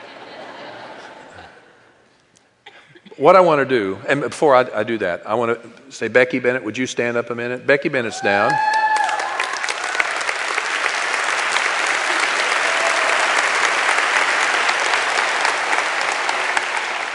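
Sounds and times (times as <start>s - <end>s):
speech: 3.2s - 8.8s
sizable audience clapping: 8.4s - 17.1s.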